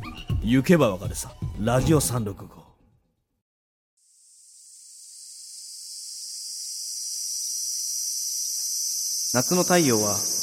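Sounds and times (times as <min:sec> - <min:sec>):
speech: 0:00.4 - 0:02.6, 0:09.3 - 0:10.4
cicadas buzzing under the summer sun: 0:04.0 - 0:10.4.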